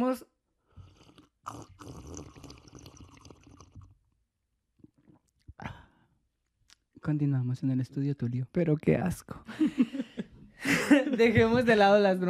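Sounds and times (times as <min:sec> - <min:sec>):
speech: 0:00.0 - 0:00.4, 0:01.5 - 0:02.0, 0:07.0 - 0:10.0, 0:10.9 - 0:12.2
slurping coffee from a small cup: 0:00.8 - 0:04.0
laughter: 0:09.5 - 0:11.7.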